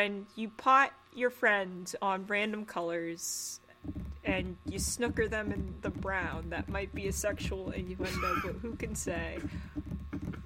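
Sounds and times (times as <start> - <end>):
speech: 0.0 - 10.0
hooves of an approaching horse clip-clopping: 3.8 - 10.4
laughter: 8.0 - 8.7.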